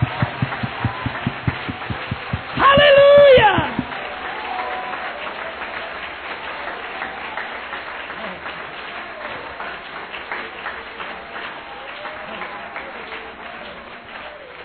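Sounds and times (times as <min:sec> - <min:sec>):
large audience clapping hands: 0:00.0 - 0:14.6.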